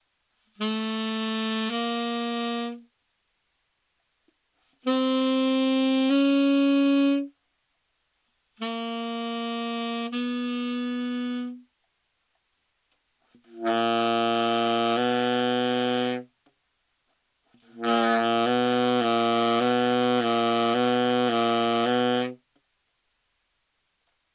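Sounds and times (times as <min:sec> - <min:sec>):
saxophone playing a minor second: 0:00.5 - 0:02.9, 0:04.8 - 0:07.4, 0:08.6 - 0:11.7, 0:13.4 - 0:16.3, 0:17.6 - 0:22.4.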